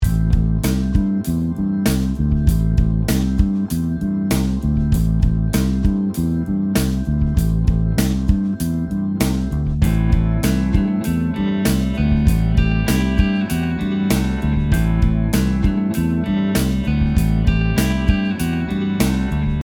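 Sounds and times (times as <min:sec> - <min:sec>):
rock bass guitar pentatonic riffs: 0:00.0 - 0:19.6.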